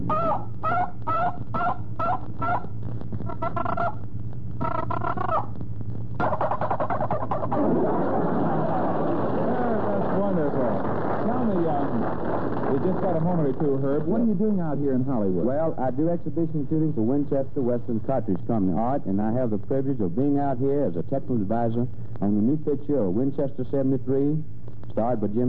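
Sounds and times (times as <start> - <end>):
handheld turkey call imitating hen yelps: 0.0 - 4.0, 4.6 - 5.5, 6.2 - 7.6
low hum: 0.0 - 25.0
laughter: 7.5 - 13.3
speech: 15.4 - 25.4.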